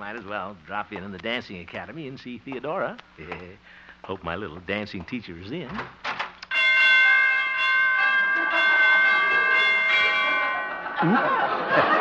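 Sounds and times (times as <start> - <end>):
speech: 0.0 - 6.1, 11.0 - 11.9
door chimes ringing: 6.5 - 11.9
light chuckling: 10.8 - 11.9.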